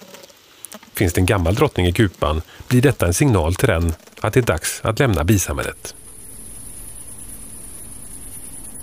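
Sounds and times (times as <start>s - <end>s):
humming beehive: 0.0s - 8.8s
queen bee piping inside a hive before emerging: 0.0s - 8.8s
speech: 0.7s - 6.0s
thin high whine: 5.0s - 8.8s.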